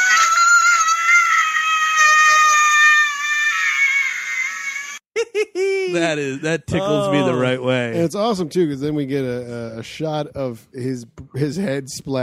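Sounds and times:
boy screaming in a film scene: 0.0s - 4.7s, 6.8s - 7.4s
laughter: 5.2s - 7.5s
speech: 6.0s - 12.2s.

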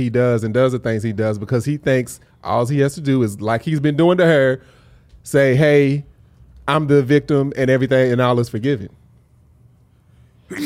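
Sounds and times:
speech: 0.0s - 6.1s, 6.7s - 9.0s, 10.5s - 10.6s
low hum: 0.0s - 10.6s
person sneezing: 10.5s - 10.6s.

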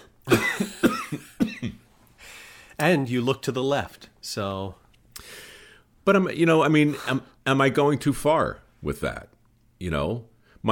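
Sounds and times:
person coughing: 0.3s - 1.8s
speech: 2.8s - 5.4s, 6.1s - 10.7s.

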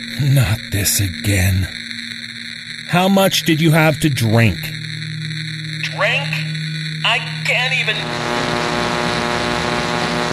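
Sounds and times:
loud harsh static on phone line: 0.0s - 10.3s
speech: 0.2s - 1.9s, 2.9s - 4.8s, 7.1s - 8.9s.

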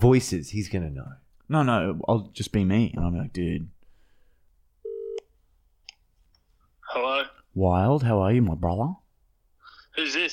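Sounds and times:
speech: 0.0s - 3.8s, 6.9s - 9.0s
electronic telephone ringing tone while placing a call: 4.8s - 5.2s.

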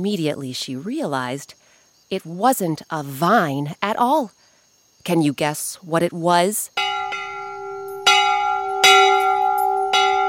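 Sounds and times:
speech: 0.0s - 4.4s, 5.0s - 6.8s
big brass bell ringing in a town square: 6.8s - 10.2s.

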